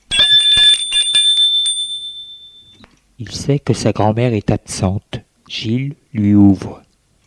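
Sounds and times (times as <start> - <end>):
doorbell ringing with bright metallic strikes: 0.0 - 2.9
speech: 3.2 - 6.9.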